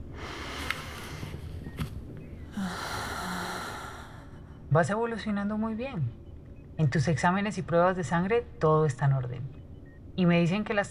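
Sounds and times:
deep forceful breathing during a doctor's examination: 0.0s - 4.7s
speech: 4.7s - 6.2s, 6.8s - 9.6s, 10.2s - 10.8s.

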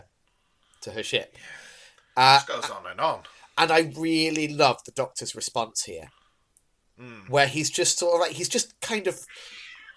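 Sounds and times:
speech: 0.8s - 1.6s, 2.2s - 6.2s, 7.0s - 9.6s
cat meowing: 9.3s - 9.9s.

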